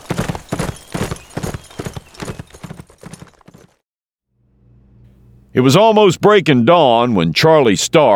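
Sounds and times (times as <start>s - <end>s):
spooked horse hooves clip-clopping down a road: 0.0s - 3.8s
low hum: 4.3s - 6.0s
speech: 5.6s - 8.1s.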